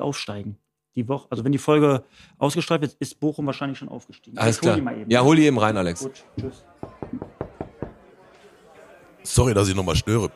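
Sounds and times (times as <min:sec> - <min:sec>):
speech: 0:00.0 - 0:07.2, 0:09.2 - 0:10.3
knocking on a door: 0:06.4 - 0:08.0.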